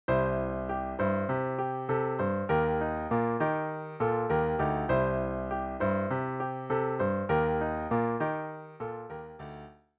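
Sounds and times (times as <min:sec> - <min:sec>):
piano vamp on C and Eb chords: 0:00.1 - 0:09.8.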